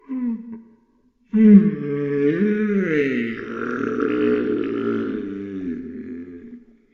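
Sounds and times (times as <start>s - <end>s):
monster moaning: 1.4s - 6.6s.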